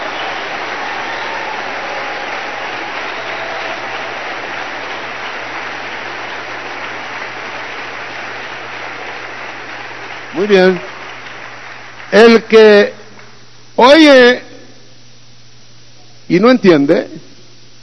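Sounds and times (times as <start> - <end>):
church congregation applauding during a sermon: 0.0 - 13.4
speech: 10.4 - 10.9, 12.1 - 13.0, 13.8 - 14.4, 16.3 - 17.3.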